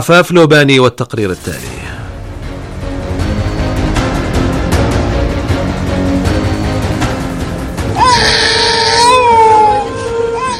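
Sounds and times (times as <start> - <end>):
speech: 0.0 - 2.0
dense rhythmic sound: 1.2 - 10.2
starving sick child in Gaza wailing and moaning: 8.0 - 10.5.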